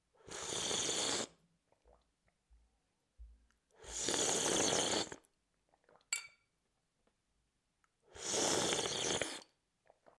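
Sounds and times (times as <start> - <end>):
slurping: 0.3 - 2.0, 3.8 - 6.0, 8.2 - 10.1.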